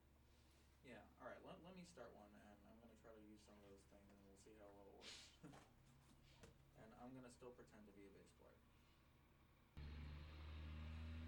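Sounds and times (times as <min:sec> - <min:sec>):
speech: 0:00.8 - 0:05.8, 0:06.8 - 0:08.7
heavy truck engine rumbling: 0:09.8 - 0:11.2.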